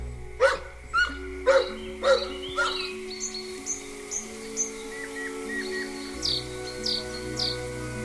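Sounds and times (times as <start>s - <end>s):
birds chirping in short high notes: 0.0s - 8.0s
dog barking: 0.4s - 0.7s, 1.5s - 2.8s.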